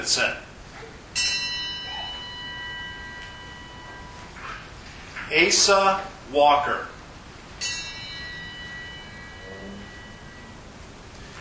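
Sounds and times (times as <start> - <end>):
speech: 0.0 - 0.5, 5.3 - 7.0
church bell tolling in remembrance: 1.1 - 5.2, 7.6 - 11.3.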